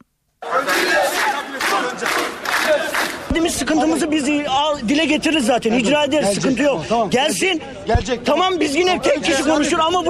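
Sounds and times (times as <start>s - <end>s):
large crowd of laid-off miners shouting and chanting while marching in Zonguldak: 0.4s - 4.6s, 7.7s - 10.0s
speech: 3.4s - 10.0s.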